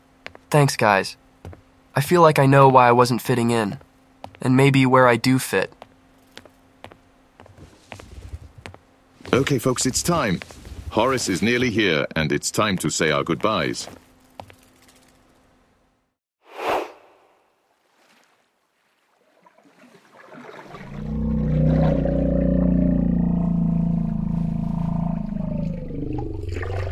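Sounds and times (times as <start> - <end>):
speech: 0.5 - 1.2, 2.0 - 3.8, 4.4 - 5.8, 9.4 - 14.0
whale surfacing from the ocean: 16.5 - 26.9
deep rumbling surge of ocean water: 19.3 - 26.9
low moaning tones: 20.8 - 26.9.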